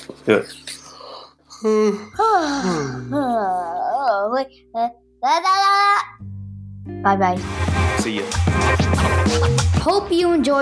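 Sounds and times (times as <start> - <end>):
speech: 0.2 - 0.7, 1.6 - 6.1, 6.9 - 10.5
person yawning: 1.6 - 3.4.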